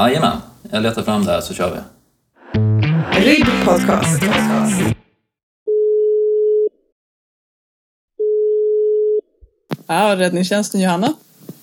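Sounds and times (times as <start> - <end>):
speech: 0.0 - 2.6, 3.2 - 5.0, 9.9 - 11.3
phone line ringback tone from an outgoing call to a rescue service: 5.7 - 6.7, 8.2 - 9.2.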